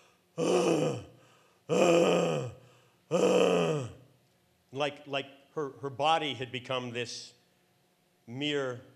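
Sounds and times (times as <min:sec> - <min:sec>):
voice imitating a woman's agonal breathing with harsh groaning gasps: 0:00.0 - 0:04.0
speech: 0:00.4 - 0:01.1, 0:04.8 - 0:07.4, 0:08.3 - 0:08.9.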